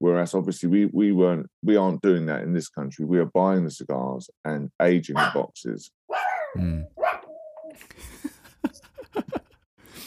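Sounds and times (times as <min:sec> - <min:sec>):
speech: 0:00.1 - 0:07.1
dog barking in a house: 0:05.2 - 0:05.4, 0:06.1 - 0:07.4
dog yelping and whining in a house: 0:06.1 - 0:07.7.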